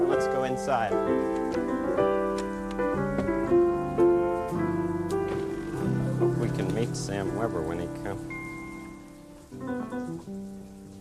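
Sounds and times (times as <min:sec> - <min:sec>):
rain falling outside: 0:00.0 - 0:10.9
speech: 0:00.1 - 0:02.1, 0:06.8 - 0:08.4
sustained musical tones: 0:03.8 - 0:09.9.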